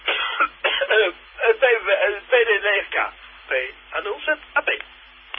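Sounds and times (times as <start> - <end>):
person coughing: 0.0 - 1.2
speech: 1.8 - 4.9.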